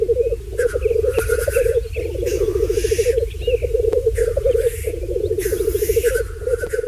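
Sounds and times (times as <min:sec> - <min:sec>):
black grouse mating display bubbling and hissing: 0:00.0 - 0:06.8.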